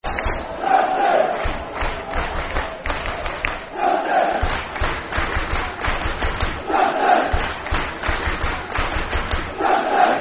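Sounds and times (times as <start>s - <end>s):
football crowd chanting: 0.4s - 10.2s
football crowd clapping: 1.3s - 3.7s, 4.4s - 6.7s, 7.3s - 9.6s.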